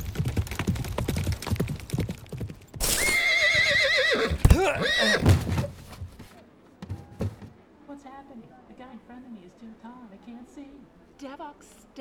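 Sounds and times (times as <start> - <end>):
rapid horse hoofbeats: 0.0 - 7.5
horse whinnying: 2.8 - 6.2
speech: 4.6 - 5.4, 8.3 - 11.9.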